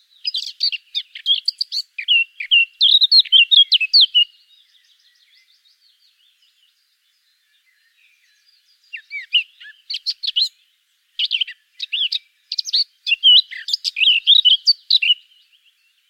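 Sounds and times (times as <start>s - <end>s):
Eurasian blackcap Sylvia atricapilla singing: 0.0s - 16.0s.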